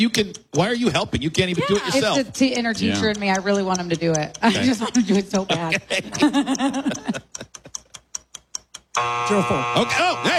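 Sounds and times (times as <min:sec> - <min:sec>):
speech: 0:00.0 - 0:07.5, 0:09.0 - 0:10.3
sharp countdown ticks: 0:00.0 - 0:09.3
laughter: 0:00.7 - 0:03.2, 0:04.4 - 0:07.8
game timer buzzer sounding: 0:09.0 - 0:10.3.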